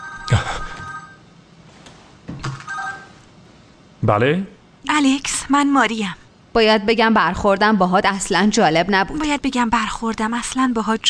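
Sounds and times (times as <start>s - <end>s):
telephone ringing as someone places a call: 0.0s - 1.2s, 2.6s - 3.2s
speech: 4.0s - 11.0s.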